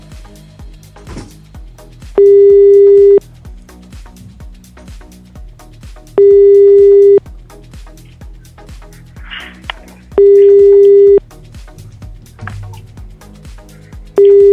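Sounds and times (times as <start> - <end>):
telephone busy signal from a rejected call: 2.2 - 3.2, 6.2 - 7.2, 10.2 - 11.2, 14.2 - 14.5.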